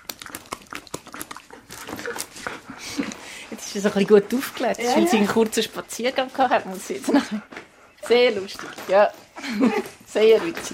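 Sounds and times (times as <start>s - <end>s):
dog mouthy bites and clicks: 0.0s - 3.2s
speech: 3.7s - 10.7s.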